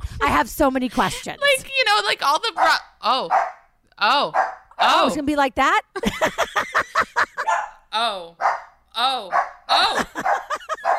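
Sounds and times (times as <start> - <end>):
speech: 0.2 - 10.4
dog barking: 2.6 - 3.7, 4.3 - 4.7, 7.4 - 7.8, 8.4 - 10.9
laughter: 6.0 - 7.5, 9.7 - 10.9.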